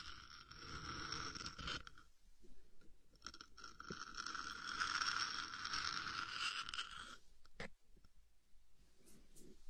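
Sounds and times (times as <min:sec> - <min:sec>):
scratching at the ear with rasping and crunching strokes: 0:00.0 - 0:02.0, 0:03.2 - 0:07.3.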